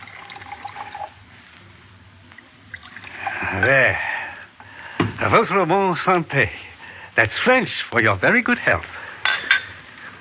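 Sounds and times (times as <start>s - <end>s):
brandy poured into a brandy snifter: 0.0s - 1.2s, 2.7s - 3.6s
speech: 3.6s - 4.1s, 5.3s - 6.6s, 7.2s - 9.0s.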